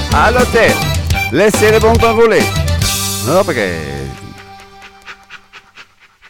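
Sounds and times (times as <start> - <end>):
speech: 0.2 - 2.6, 3.2 - 4.0
dog panting out of breath: 3.9 - 6.2.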